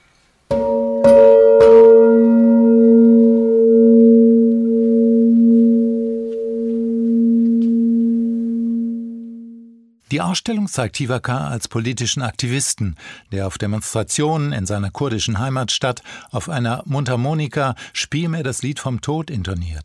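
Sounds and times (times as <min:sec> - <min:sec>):
metal bell struck with deep ringing tone: 0:00.5 - 0:08.2
speech: 0:10.1 - 0:19.8.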